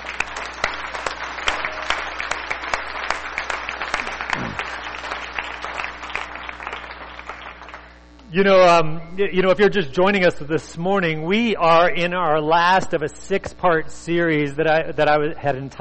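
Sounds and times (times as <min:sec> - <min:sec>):
congregation applauding during a church service: 0:00.0 - 0:08.0
speech: 0:08.3 - 0:15.8.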